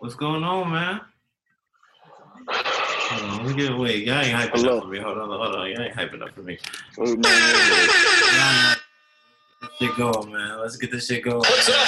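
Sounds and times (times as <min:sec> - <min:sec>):
speech: 0:00.0 - 0:01.1, 0:02.4 - 0:08.8, 0:09.8 - 0:11.8
loud harsh buzzer: 0:07.2 - 0:10.1, 0:11.4 - 0:11.8.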